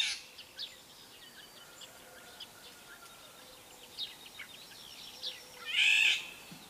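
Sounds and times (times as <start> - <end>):
faint bird chirps: 0.0 - 6.6
Eurasian golden oriole hoarse harsh screech: 5.7 - 6.2.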